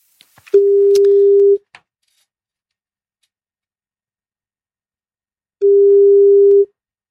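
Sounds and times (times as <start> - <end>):
telephone line tone while a call is placed: 0.6 - 1.6, 5.6 - 6.7.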